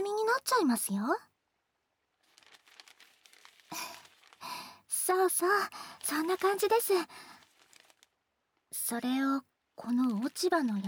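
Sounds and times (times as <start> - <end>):
speech: 0.4 - 1.3, 5.1 - 7.3, 8.8 - 10.8
aluminum foil crinkling as it is wrapped around a sweet potato: 2.0 - 8.7, 9.8 - 10.8.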